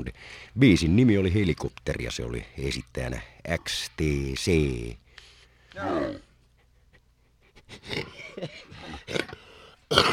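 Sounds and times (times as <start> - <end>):
speech: 0.0 - 5.0, 5.8 - 6.3, 7.7 - 10.1
person coughing and clearing their throat: 9.1 - 10.1.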